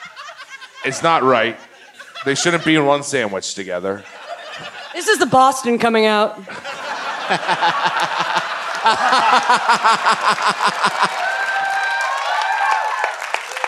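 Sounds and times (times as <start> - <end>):
audience hearty laughter: 0.0 - 2.8, 4.0 - 5.0, 6.4 - 11.2
speech: 0.8 - 11.3
audience rhythmic clapping: 7.2 - 13.6.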